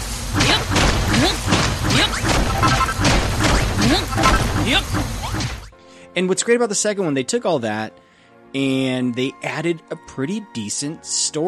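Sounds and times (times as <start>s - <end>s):
blocks being smashed in a block-building video game: 0.4s - 5.6s
speech: 6.2s - 11.4s.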